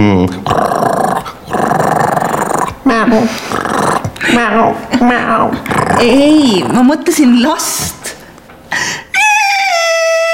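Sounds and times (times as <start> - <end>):
dog growling: 0.2 - 4.4, 5.0 - 7.0
speech: 5.0 - 8.0
dog yelping: 9.2 - 10.3.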